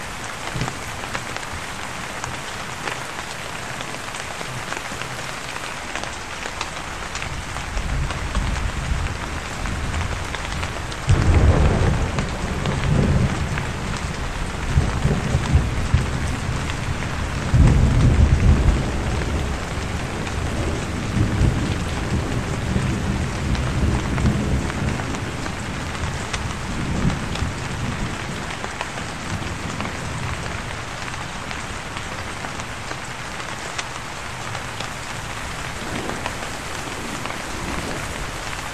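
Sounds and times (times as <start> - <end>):
steady rain pattering on surfaces: 0.0 - 38.7
low thunder rumbling: 7.3 - 33.0, 34.6 - 38.7.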